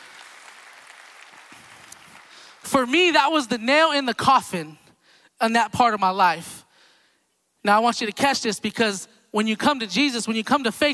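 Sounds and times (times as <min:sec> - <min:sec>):
audience applause at a church service: 0:00.0 - 0:02.7
speech: 0:02.7 - 0:04.8, 0:05.4 - 0:06.6, 0:07.6 - 0:10.9.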